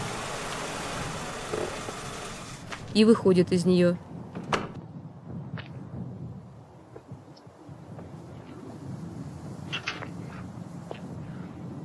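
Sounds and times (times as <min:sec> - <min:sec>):
car engine idling on a wet road: 0:00.0 - 0:02.9
speech: 0:03.0 - 0:04.1.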